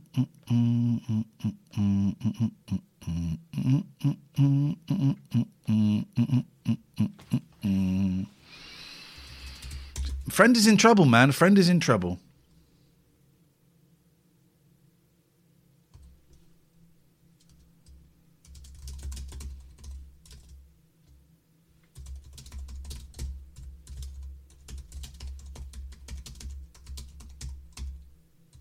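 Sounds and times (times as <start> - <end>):
steady low hum of noise: 0.0 - 28.6
speech: 0.2 - 4.2, 10.4 - 12.3
rapid typing on a computer keyboard: 9.2 - 10.2, 17.4 - 20.6, 21.9 - 28.6.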